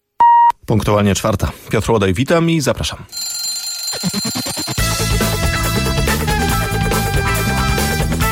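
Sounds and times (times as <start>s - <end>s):
speech: 0.7s - 3.4s, 4.0s - 4.6s
alarm clock ringing: 3.1s - 5.3s
loud music: 4.8s - 8.2s.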